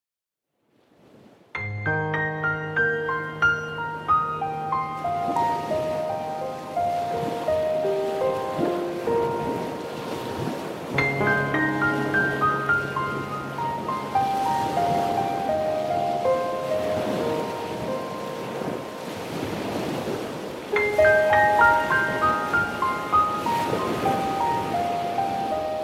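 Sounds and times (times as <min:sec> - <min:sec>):
ocean waves: 0:00.7 - 0:25.8
piano playing: 0:01.5 - 0:25.8.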